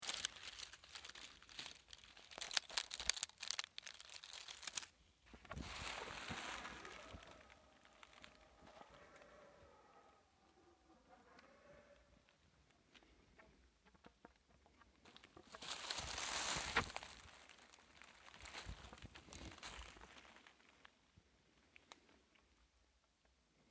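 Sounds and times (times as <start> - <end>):
forest walk: 0.0 - 10.0, 15.1 - 20.7.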